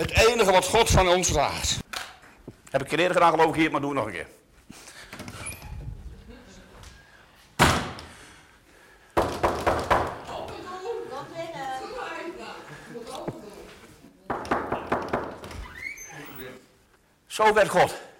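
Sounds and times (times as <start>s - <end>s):
speech: 0.0s - 1.8s, 2.7s - 4.8s, 17.4s - 18.0s
loud thump: 7.6s - 8.1s
quick sharp knocks on a door: 9.2s - 10.2s, 14.3s - 15.5s.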